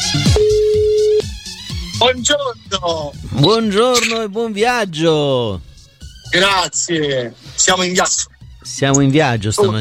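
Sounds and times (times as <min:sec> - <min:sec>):
WhatsApp voice-call electronic ringing tone beep: 0:00.2 - 0:01.2
speech: 0:02.0 - 0:05.7, 0:06.3 - 0:09.7.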